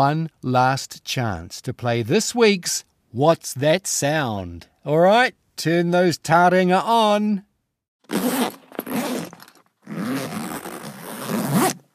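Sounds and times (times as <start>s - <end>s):
speech: 0.0s - 7.5s, 8.1s - 8.5s
zip on a school backpack being pulled: 8.0s - 11.9s.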